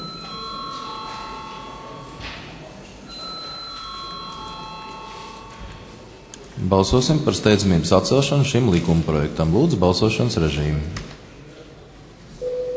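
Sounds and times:
electronic bell ringing in a parliamentary chamber before a vote: 0.0s - 2.2s, 3.1s - 6.2s
faint murmur of a parliamentary chamber: 0.0s - 12.7s
speech: 6.6s - 11.1s.

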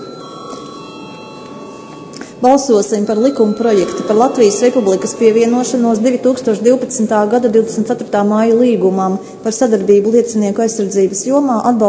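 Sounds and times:
bell signal ringing in a parliament chamber before a vote: 0.0s - 7.5s
speech: 2.4s - 11.8s.

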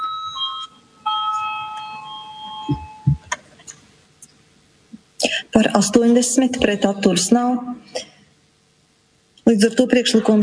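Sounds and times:
electronic bell tones calling a vote in a parliament chamber: 0.0s - 3.3s
soft low thumps: 2.7s - 3.4s
speech: 5.6s - 8.1s, 9.5s - 10.4s.

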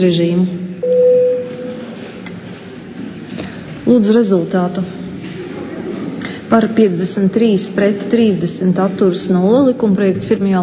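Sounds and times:
speech: 0.0s - 1.1s, 3.9s - 5.0s, 6.5s - 10.6s
electronic voting bell in a parliament chamber: 0.8s - 1.9s.

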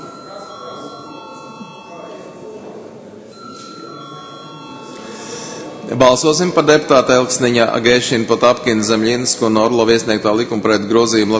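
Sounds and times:
parliamentary voting call electric bell ringing: 0.0s - 2.6s, 3.3s - 5.8s
murmur of many people: 0.0s - 11.3s
shuffling of many people: 0.8s - 6.0s
speech: 5.9s - 11.3s.

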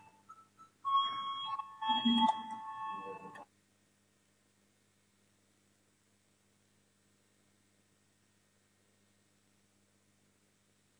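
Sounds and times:
electric parliamentary voting bell ringing: 0.9s - 3.4s.

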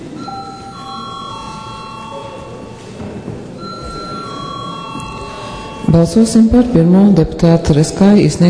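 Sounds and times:
murmur of room noise and shuffling in a large hall: 0.0s - 8.4s
parliamentary voting call electric bell ringing: 0.1s - 3.0s, 3.6s - 7.0s
speech: 5.9s - 8.4s.

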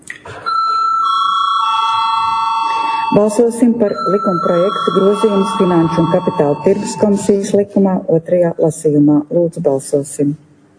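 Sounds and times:
electronic bell in the Latvian parliament chamber calling members to a vote: 0.5s - 7.6s
speech: 3.1s - 10.5s.

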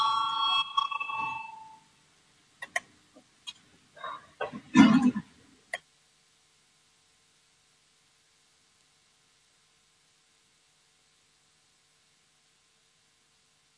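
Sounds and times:
parliament chamber bell ringing to call a vote: 0.0s - 1.8s.

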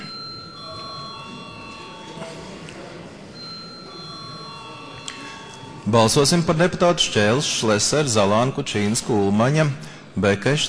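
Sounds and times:
parliamentary electric voting bell ringing: 0.0s - 8.5s
murmur of people talking in a large hall: 0.0s - 10.6s
speech: 5.9s - 10.6s.

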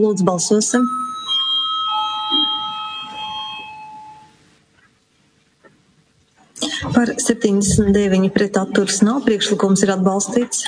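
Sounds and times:
speech: 0.0s - 1.2s, 7.0s - 10.6s
electric bell ringing to call a parliamentary vote: 0.6s - 4.5s.

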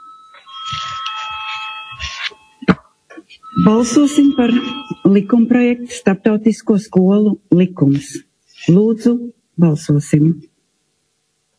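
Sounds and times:
electric voting bell ringing in a parliament session: 0.0s - 2.8s, 3.4s - 6.1s
speech: 3.6s - 10.5s.

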